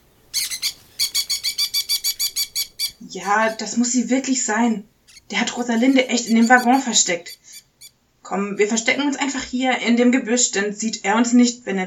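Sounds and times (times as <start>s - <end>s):
parrot screeching: 0.3s - 3.8s, 5.1s - 9.0s
speech: 3.1s - 7.4s, 8.3s - 11.8s.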